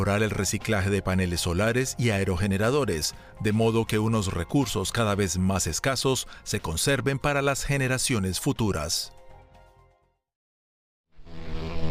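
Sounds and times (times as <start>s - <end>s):
speech: 0.0s - 9.2s
cockchafer beetle wings buzzing in flight: 11.2s - 11.8s.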